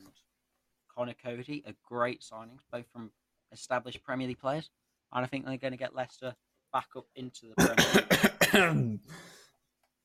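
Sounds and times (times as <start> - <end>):
speech: 1.0 - 9.4
cough with strained voiced rasp and breathy exhale: 7.6 - 9.1.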